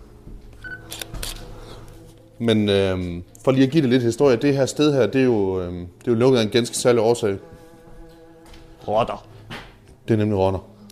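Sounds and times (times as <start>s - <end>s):
camera shutter clicks taking photos of posters: 0.9s - 1.5s
speech: 2.4s - 7.6s, 8.8s - 9.3s, 10.1s - 10.7s.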